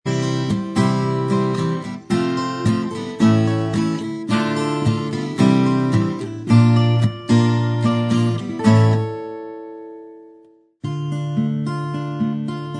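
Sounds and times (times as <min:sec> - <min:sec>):
acoustic version instrumental backing track: 0:00.1 - 0:12.7.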